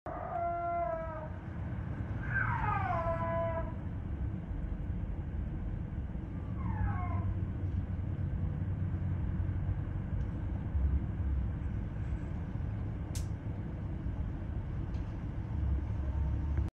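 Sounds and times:
snow leopard yowls: 0.1 - 3.9, 6.3 - 7.7
low rumbling background noise: 0.1 - 16.7.

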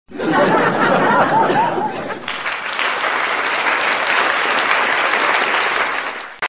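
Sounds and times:
people laughing: 0.1 - 6.1
people clapping: 2.2 - 6.4.

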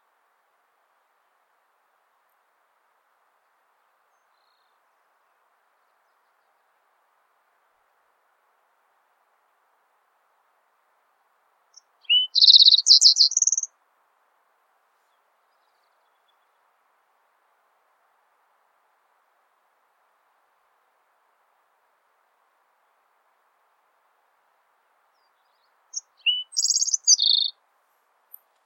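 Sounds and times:
green-tailed towhee calling: 12.0 - 13.7, 25.9 - 27.5.

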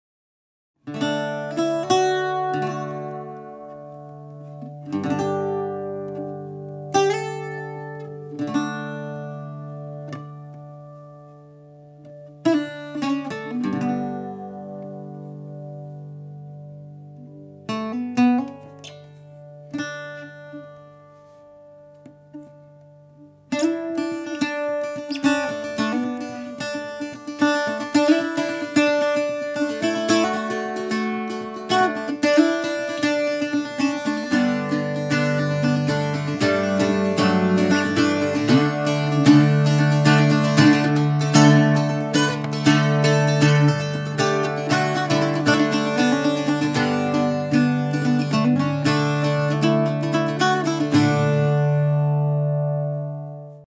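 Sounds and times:
mandolin: 0.8 - 53.6.

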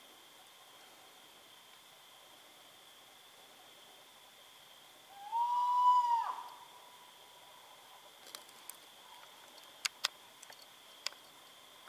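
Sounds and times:
faint steady hum: 0.0 - 11.8
Spot-bellied eagle-owl wail: 5.1 - 6.7.

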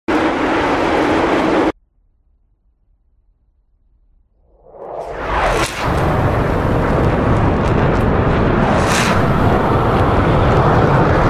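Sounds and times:
Sukhoi Su 75 jet aircraft: 0.1 - 1.8, 4.5 - 11.2.

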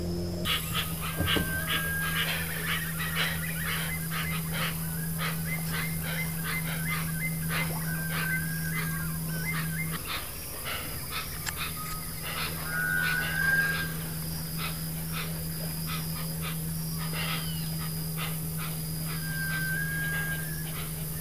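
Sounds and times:
hoatzin calling: 0.0 - 21.2.

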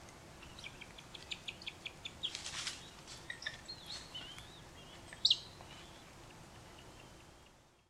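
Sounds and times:
European honey buzzard calling: 0.3 - 7.6.

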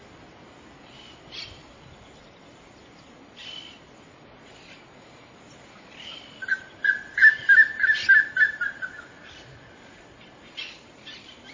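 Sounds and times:
Plumbeous ibis calling: 0.8 - 11.5.

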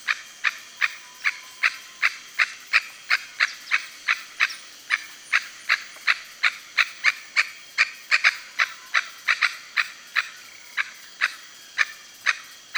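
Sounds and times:
red-necked aracari giving short sharp piercing notes: 0.0 - 12.7.

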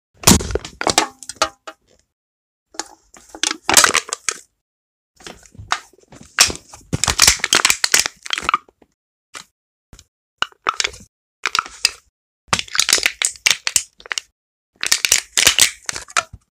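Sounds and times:
soda can being crushed: 0.2 - 1.8, 2.8 - 4.5, 6.4 - 8.6, 10.4 - 16.4.

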